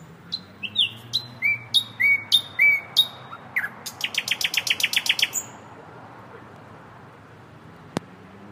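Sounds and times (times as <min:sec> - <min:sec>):
nightingale singing: 0:00.0 - 0:05.6
faint outdoor hiss: 0:00.0 - 0:08.5.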